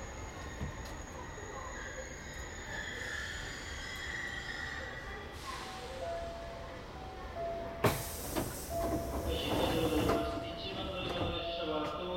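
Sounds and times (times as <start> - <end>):
commuter train wheels squealing: 0.0 - 5.8
commuter train rumbling along the rails: 0.0 - 12.0.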